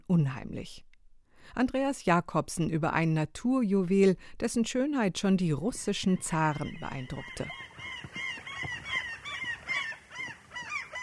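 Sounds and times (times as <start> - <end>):
speech: 0.1 - 0.9, 1.5 - 7.7
gulls screeching at Lake Onkivesi in central Finland: 6.1 - 11.0.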